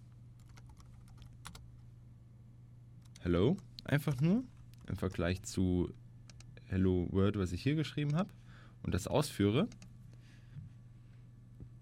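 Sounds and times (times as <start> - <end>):
steady low hum: 0.0 - 11.7
typing code on a computer keyboard: 0.4 - 1.6
speech: 3.2 - 6.0, 6.7 - 9.8.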